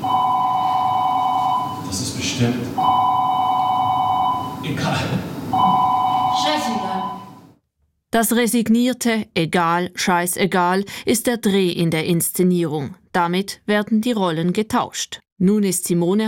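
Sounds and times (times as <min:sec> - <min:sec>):
electronic telephone ringing in a theatre production: 0:00.0 - 0:01.9, 0:02.8 - 0:04.7, 0:05.6 - 0:07.5
speech: 0:02.4 - 0:02.8, 0:08.1 - 0:16.2.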